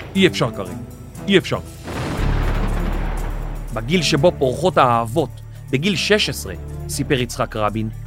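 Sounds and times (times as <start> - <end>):
speech: 0.2 - 1.8, 3.7 - 8.0
booming blasts in battle: 1.7 - 5.0
continuous barrage of gunfire in battle: 1.8 - 4.2.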